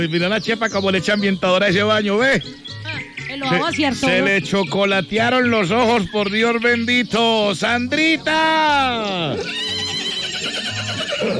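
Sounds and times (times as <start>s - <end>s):
speech: 0.0s - 9.7s
mare on a farm neighing: 8.6s - 11.3s.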